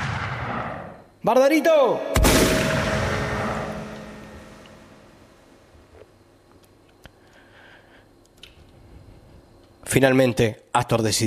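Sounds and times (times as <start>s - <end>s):
carbine shot fired into the air: 0.0s - 0.9s, 2.2s - 5.3s
speech: 1.2s - 2.4s, 10.0s - 11.2s
rumbling echo of rifle shot: 2.2s - 5.8s.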